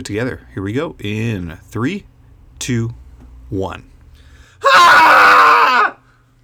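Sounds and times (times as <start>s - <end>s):
speech: 0.0s - 3.9s
cathartic human scream: 4.6s - 6.0s.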